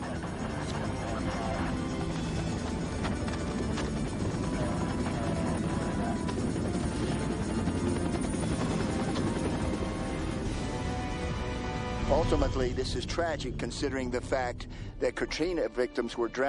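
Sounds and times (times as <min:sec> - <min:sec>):
Black Hawk helicopter on surveillance flying overhead, rotor thumping: 0:00.0 - 0:11.8
speech: 0:12.3 - 0:16.4.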